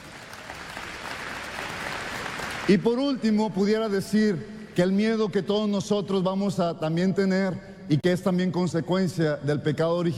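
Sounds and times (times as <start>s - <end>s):
audience at a religious sermon applauding: 0.0s - 2.8s
speech: 2.7s - 10.1s.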